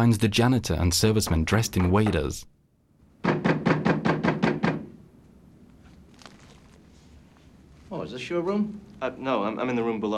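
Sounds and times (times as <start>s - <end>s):
speech: 0.0s - 2.5s, 8.1s - 10.1s
banging on a room door: 3.2s - 5.0s.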